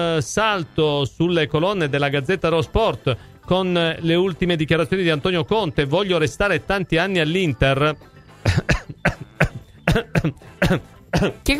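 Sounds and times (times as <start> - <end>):
speech: 0.0 - 8.1, 10.2 - 11.5
person coughing harshly: 8.4 - 11.5.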